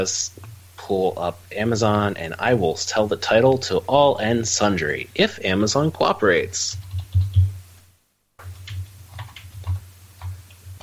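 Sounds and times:
speech: 0:00.0 - 0:06.8
low steady hum: 0:00.0 - 0:10.8
typing on a computer keyboard: 0:06.8 - 0:07.5, 0:08.4 - 0:10.8.

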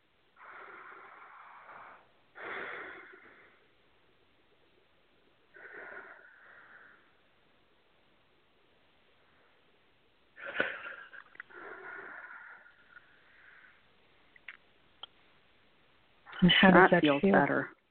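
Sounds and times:
slow deep breaths: 0:00.3 - 0:07.6, 0:11.4 - 0:14.2
speech: 0:16.4 - 0:17.8.

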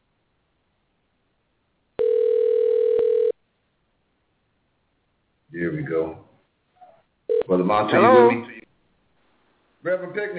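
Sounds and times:
telephone dial tone while placing a call: 0:02.0 - 0:03.4
speech: 0:05.7 - 0:06.2, 0:07.5 - 0:08.6, 0:09.8 - 0:10.3.

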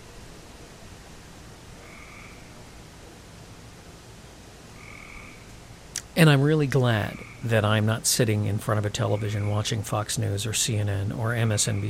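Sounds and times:
outdoor hiss: 0:00.0 - 0:11.8
tree frog calling at night: 0:01.8 - 0:02.8, 0:04.8 - 0:07.8, 0:09.0 - 0:09.8, 0:11.4 - 0:11.8
speech: 0:06.2 - 0:11.8.

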